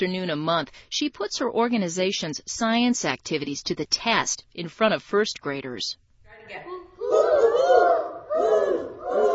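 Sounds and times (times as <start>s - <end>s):
speech: 0.0s - 7.4s
several voices imitating great horned owl hoots during a science activity: 7.0s - 9.3s.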